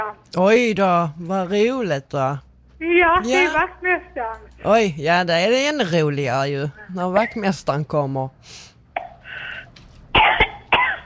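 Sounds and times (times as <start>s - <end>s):
speech: 0.0s - 8.7s
person coughing harshly: 10.1s - 11.0s.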